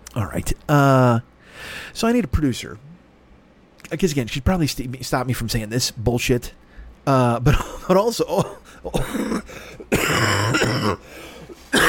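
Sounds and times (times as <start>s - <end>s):
speech: 0.2s - 2.9s, 3.8s - 11.2s
harsh throat-clearing cough: 7.5s - 11.8s.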